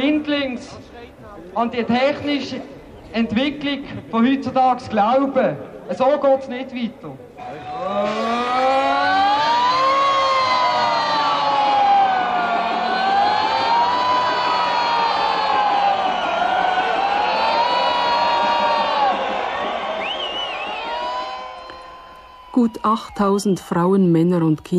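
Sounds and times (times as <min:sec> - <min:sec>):
speech: 0:00.1 - 0:09.2, 0:22.6 - 0:24.7
alarm sirens wailing across the city: 0:07.4 - 0:23.5
dense crowd shouting and cheering: 0:07.4 - 0:23.6.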